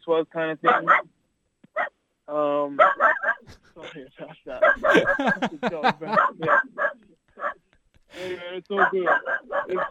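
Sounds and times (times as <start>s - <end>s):
speech: 0.0s - 1.2s, 2.3s - 6.9s, 8.2s - 9.8s
dog barking: 0.6s - 1.1s, 1.7s - 2.0s, 2.8s - 3.5s, 4.5s - 7.6s, 8.8s - 9.8s
laughter: 3.5s - 6.9s, 7.8s - 8.4s.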